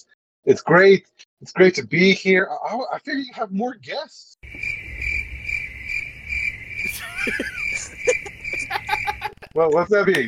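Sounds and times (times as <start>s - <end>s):
speech: 0.0s - 4.8s, 7.2s - 8.2s, 9.5s - 10.2s
cricket chirping: 4.4s - 9.5s
laughter: 6.9s - 10.2s.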